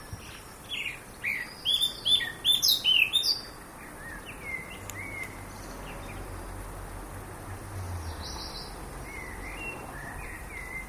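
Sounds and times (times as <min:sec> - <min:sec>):
Eurasian blackcap Sylvia atricapilla song: 0:00.0 - 0:10.8
low rumbling noise: 0:00.0 - 0:10.8.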